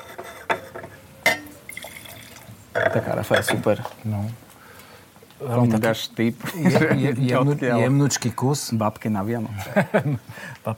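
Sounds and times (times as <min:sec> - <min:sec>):
red wine being poured into a glass: 0:01.4 - 0:02.6
speech: 0:02.8 - 0:04.4, 0:05.4 - 0:10.7
laughter: 0:06.4 - 0:07.3, 0:09.5 - 0:10.5.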